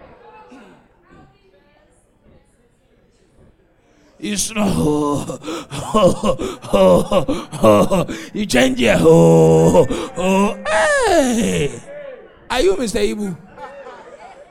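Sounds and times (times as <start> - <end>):
human voice imitating snoring: 4.2 - 11.8
speech: 4.2 - 11.8, 12.5 - 13.4
laughter: 4.2 - 11.9, 12.5 - 14.4.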